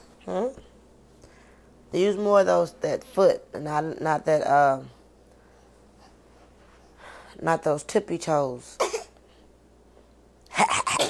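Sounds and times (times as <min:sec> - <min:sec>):
speech: 0:00.2 - 0:00.6, 0:01.9 - 0:05.0, 0:07.4 - 0:08.8
person sneezing: 0:10.5 - 0:11.0.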